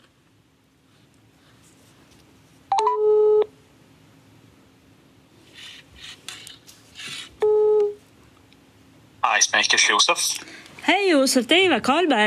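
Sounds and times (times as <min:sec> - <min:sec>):
phone line ringing tones on an outgoing call: 0:02.7 - 0:03.5
speech: 0:09.4 - 0:12.2.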